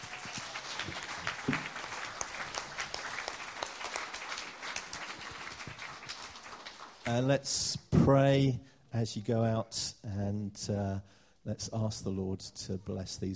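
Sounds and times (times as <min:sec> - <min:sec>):
audience applauding: 0:00.0 - 0:07.3
speech: 0:07.1 - 0:13.3.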